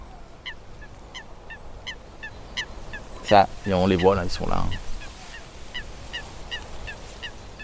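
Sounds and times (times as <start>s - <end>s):
Eurasian coot calling: 0.0s - 7.6s
speech: 3.3s - 4.9s.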